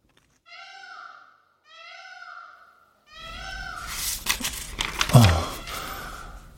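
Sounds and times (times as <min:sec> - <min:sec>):
peacock loud harsh wailing calls: 0:00.5 - 0:06.5.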